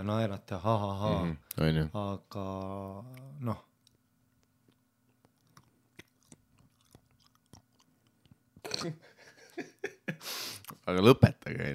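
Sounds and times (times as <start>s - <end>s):
speech: 0.0s - 3.7s, 8.6s - 11.7s
chewing a lozenge: 4.6s - 8.7s.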